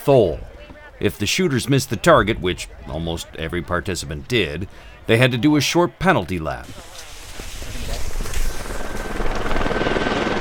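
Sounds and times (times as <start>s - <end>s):
speech: 0.0s - 7.1s
helicopter giving rides to townspeople, rotor blades thumping over engine whine: 7.4s - 10.3s.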